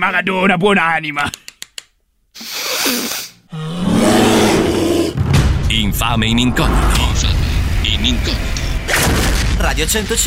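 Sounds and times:
speech: 0:00.0 - 0:01.4, 0:02.9 - 0:03.8, 0:05.7 - 0:07.4, 0:08.0 - 0:10.2
bear roaring: 0:03.5 - 0:05.2.

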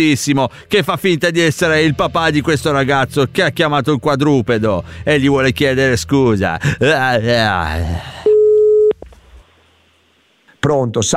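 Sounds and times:
speech: 0:00.0 - 0:08.2, 0:10.6 - 0:11.1
telephone line beep on a call-back: 0:08.3 - 0:09.0.

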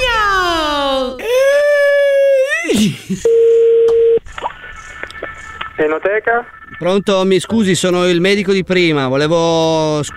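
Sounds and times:
loud wailing crying-like voice with wavering sliding pitch: 0:00.0 - 0:03.1
speech: 0:03.1 - 0:03.6, 0:05.8 - 0:10.1
steady telephone signal tone: 0:03.3 - 0:04.2
faint scattered sounds: 0:04.2 - 0:08.8.

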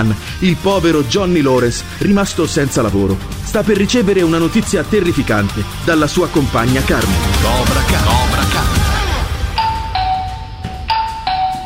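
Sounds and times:
speech: 0:00.0 - 0:08.2
doorbell chime ringing: 0:09.5 - 0:11.6.

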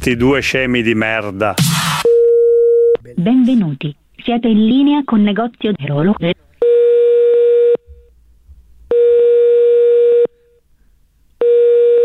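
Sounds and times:
speech: 0:00.0 - 0:02.0, 0:03.2 - 0:06.4
telephone ringing tones of a call to a chain shop: 0:06.6 - 0:07.8, 0:08.9 - 0:10.3, 0:11.4 - 0:12.0.

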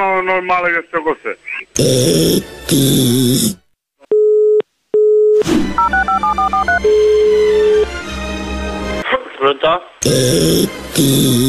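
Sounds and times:
speech: 0:00.0 - 0:03.6, 0:09.4 - 0:11.4
long steady telephone tone: 0:04.1 - 0:07.8.

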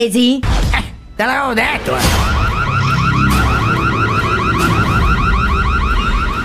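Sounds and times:
speech: 0:00.0 - 0:00.6, 0:01.2 - 0:02.3
warbling alarm siren blaring: 0:02.0 - 0:06.4.

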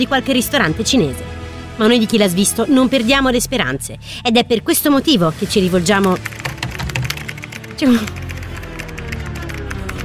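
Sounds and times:
speech: 0:00.0 - 0:06.4, 0:07.8 - 0:08.2
typing on a computer keyboard: 0:06.2 - 0:10.0.

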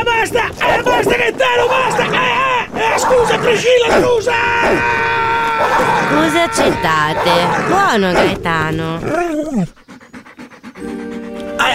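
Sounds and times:
speech: 0:00.2 - 0:09.8
dog panting in quick rhythmic breaths: 0:06.9 - 0:11.7.

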